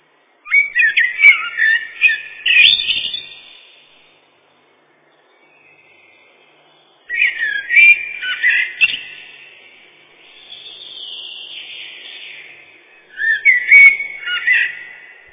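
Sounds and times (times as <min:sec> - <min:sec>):
common blackbird Turdus merula singing rich warbled phrases: 0:00.4 - 0:04.2, 0:05.0 - 0:15.3.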